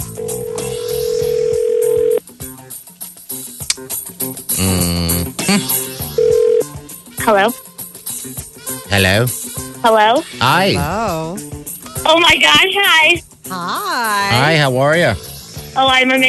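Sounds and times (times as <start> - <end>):
phone dialing beeps: 0.1 - 2.2
steady phone dial tone: 0.1 - 2.2, 6.2 - 6.8
speech: 5.5 - 5.8, 7.3 - 7.7, 8.9 - 11.4, 12.1 - 16.2.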